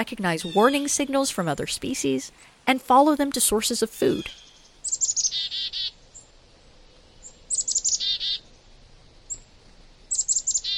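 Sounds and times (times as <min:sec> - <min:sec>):
winter flock of songbirds calling: 0:00.0 - 0:01.3, 0:03.4 - 0:10.7
speech: 0:00.0 - 0:04.5.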